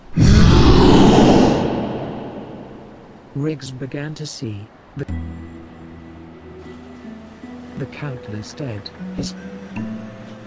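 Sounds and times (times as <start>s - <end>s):
deep monstrous howl: 0.0s - 3.3s
speech: 3.4s - 5.4s, 7.8s - 10.0s.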